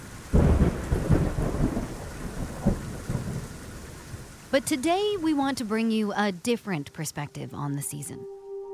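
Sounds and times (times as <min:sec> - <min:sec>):
monsoon thunder rumbling: 0:00.0 - 0:06.0
pouring monsoon rain: 0:00.0 - 0:08.4
speech: 0:04.5 - 0:08.3.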